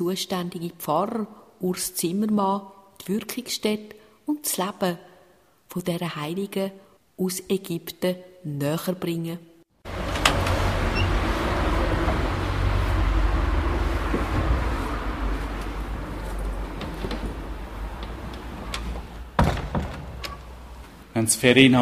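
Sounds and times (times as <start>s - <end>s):
speech: 0.0s - 5.1s, 5.7s - 9.5s, 21.2s - 21.8s
passing vehicles: 9.8s - 19.4s
street traffic rumble: 9.8s - 21.1s.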